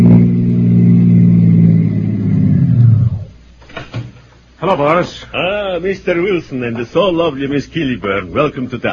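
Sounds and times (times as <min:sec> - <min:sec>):
press car engine revving as it pulls up in front of a club: 0:00.0 - 0:03.4
speech: 0:04.7 - 0:08.9.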